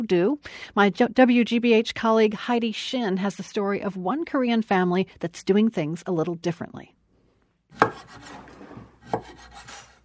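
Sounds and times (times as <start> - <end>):
speech: 0.0 - 7.0, 7.7 - 8.4, 9.1 - 9.7
knife scraping while cutting a mango: 7.7 - 10.0
knife blade knocking on a kitchen counter while slicing a mango: 7.8 - 9.4.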